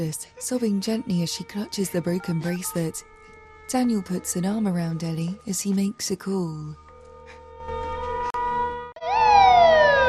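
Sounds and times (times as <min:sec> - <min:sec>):
police car siren wailing: 0:00.0 - 0:05.3, 0:08.3 - 0:10.0
speech: 0:00.0 - 0:06.8.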